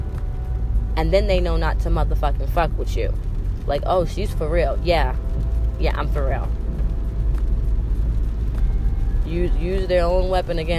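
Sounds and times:
car driving on the road: 0.0s - 10.7s
speech: 1.0s - 6.6s, 9.3s - 10.7s.

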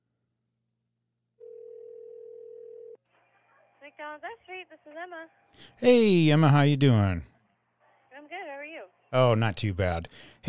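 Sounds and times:
telephone ringback tone on an outgoing call: 1.4s - 3.0s
speech: 3.8s - 7.3s, 8.2s - 10.4s.

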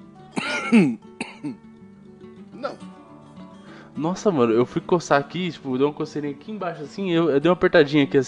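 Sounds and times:
raspy coughing: 0.4s - 1.6s, 2.6s - 2.8s
speech: 0.7s - 1.7s, 4.0s - 8.2s.

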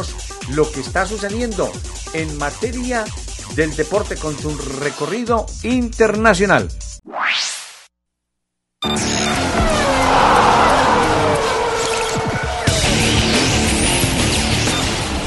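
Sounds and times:
speech: 0.0s - 6.8s
Formula 1 race car engines roaring with high whining tones: 9.1s - 15.2s
quick rising whoosh: 9.5s - 14.1s.

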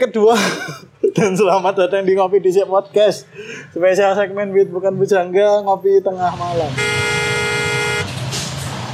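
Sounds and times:
speech: 0.0s - 7.0s
laughter: 0.2s - 1.7s
car horns honking in a traffic jam: 6.7s - 8.2s.

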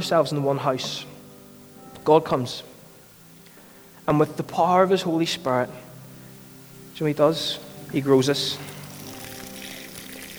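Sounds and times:
speech: 0.0s - 1.1s, 2.0s - 2.7s, 4.1s - 5.8s, 7.0s - 8.7s
water poured in a steady stream until it overflows: 8.5s - 10.3s.

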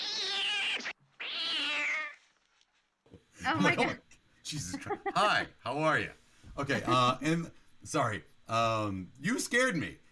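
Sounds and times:
cat meowing at the window: 0.0s - 2.2s
speech: 3.4s - 10.0s.

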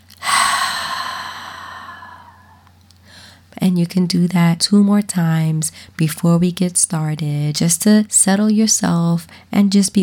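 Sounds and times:
person breathing in through the nose and out through the mouth: 0.1s - 3.4s
speech: 3.6s - 10.0s.

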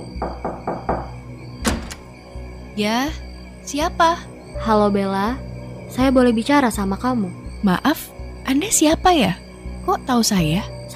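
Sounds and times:
knocking on a door: 0.2s - 2.0s
speech: 2.8s - 10.9s.

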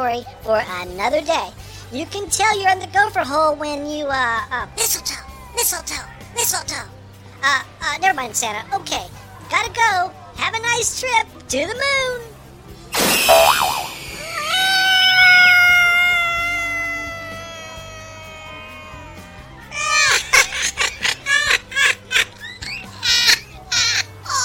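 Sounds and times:
speech: 0.1s - 12.3s
cat yowling: 13.5s - 20.9s
laughter: 19.7s - 24.4s.

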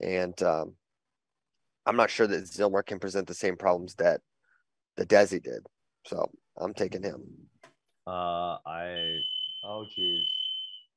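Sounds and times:
speech: 0.0s - 0.8s, 1.8s - 4.3s, 5.0s - 10.4s
fire alarm steady piercing high-pitched tone: 8.9s - 10.9s.

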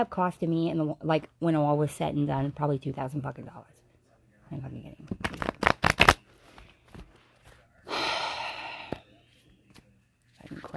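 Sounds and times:
speech: 0.0s - 3.8s, 4.5s - 5.5s
deck of playing cards slapping: 5.1s - 7.1s.

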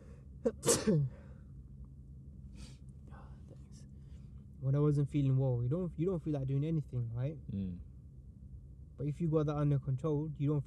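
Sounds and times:
speech: 0.4s - 1.2s, 4.6s - 7.9s, 9.0s - 10.6s
sneeze: 0.5s - 1.2s.

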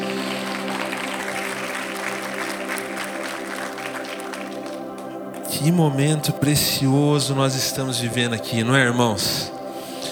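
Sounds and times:
large audience applauding in a church hall: 0.0s - 6.6s
speech: 5.6s - 9.6s.

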